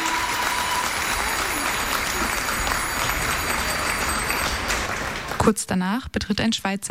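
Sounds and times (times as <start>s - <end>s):
large crowd applauding in an arena: 0.0s - 5.6s
thin high bicycle bells rung by fans: 0.6s - 4.9s
speech: 5.5s - 6.9s.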